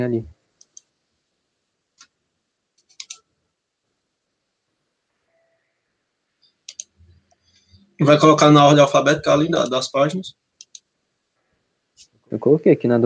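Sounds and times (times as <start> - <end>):
speech: 0.0 - 0.4, 8.0 - 10.4, 12.3 - 13.0
quiet hiss: 0.0 - 13.0
faint computer mouse clicks: 0.6 - 0.9, 2.8 - 3.2, 6.4 - 7.5, 10.6 - 10.9.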